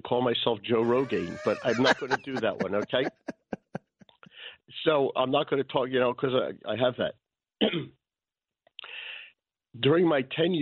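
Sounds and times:
speech: 0.1 - 3.4, 4.7 - 8.0, 9.8 - 10.6
laughter: 0.8 - 3.8
short rough cough or throat clearing: 7.6 - 7.9.

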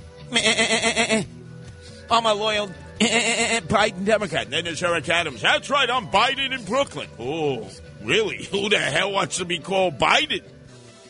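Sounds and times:
sheep bleating: 0.2 - 1.3, 3.0 - 3.8
speech: 0.3 - 1.3, 2.1 - 10.6.

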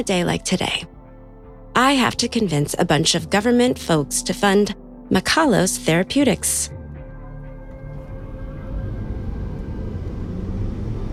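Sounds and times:
speech: 0.0 - 0.9, 1.8 - 6.8
car driving through city traffic: 8.4 - 11.1.

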